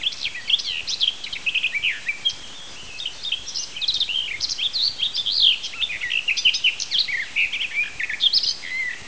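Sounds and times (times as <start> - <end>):
garden warbler singing: 0.0 - 9.0.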